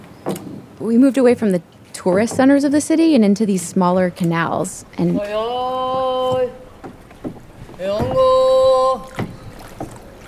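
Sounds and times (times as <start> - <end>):
rowboat gliding through narrow city canals: 0.0 - 10.2
speech: 0.8 - 6.6, 7.2 - 9.1
knocks: 4.0 - 10.2
person singing out long sustained calls: 5.0 - 6.7, 7.7 - 9.4.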